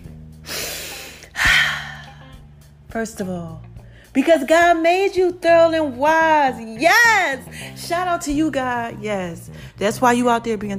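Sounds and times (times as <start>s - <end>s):
person taking a deep breath mid-monologue: 0.4s - 2.3s
speech: 2.9s - 10.7s.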